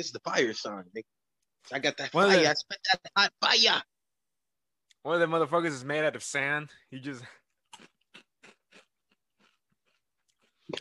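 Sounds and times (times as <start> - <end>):
speech: 0.0 - 3.9, 5.0 - 7.9
crunchy bites: 7.7 - 10.8
loud chewing: 7.7 - 10.8.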